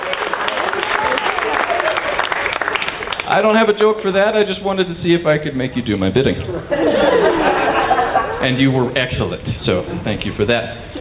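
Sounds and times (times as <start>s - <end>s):
audience applause at a comedy show: 0.0s - 4.0s
crowd noise: 0.0s - 11.0s
speech: 3.3s - 7.5s, 8.4s - 11.0s
laughter: 6.4s - 8.9s.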